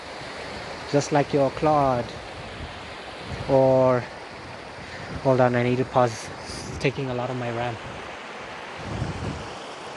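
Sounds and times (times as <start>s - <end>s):
rushing flowing river water: 0.0s - 9.9s
speech: 0.9s - 2.2s, 3.5s - 4.2s, 5.1s - 8.0s.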